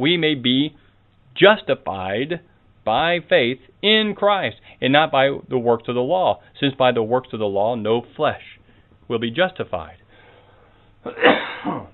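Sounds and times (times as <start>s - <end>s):
speech: 0.0s - 0.8s, 1.4s - 10.0s, 11.0s - 11.9s
person with a persistent cough coughing: 11.0s - 11.9s.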